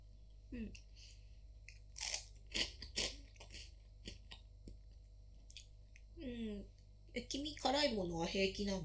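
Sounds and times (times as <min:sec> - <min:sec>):
speech: 0:00.5 - 0:01.2, 0:06.2 - 0:08.8
crunchy bites of wasabi-flavored stick-shaped snack: 0:01.7 - 0:04.4.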